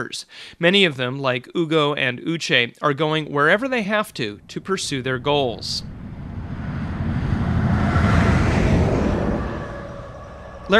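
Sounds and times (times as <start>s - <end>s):
speech: 0.0s - 6.0s
steady wind-like rumble: 3.5s - 10.7s
vehicle rushing past on an open road: 4.1s - 10.7s.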